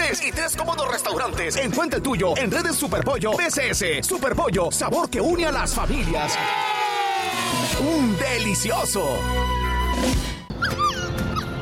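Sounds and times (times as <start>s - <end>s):
speech: 0.1s - 10.8s
small female dog whimpering and yipping: 10.6s - 11.6s.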